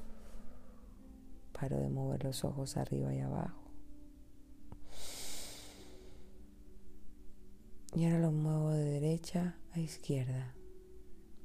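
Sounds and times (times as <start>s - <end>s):
deep breath: 0.0s - 1.0s, 4.8s - 6.4s
speech: 1.6s - 3.6s, 8.0s - 10.6s.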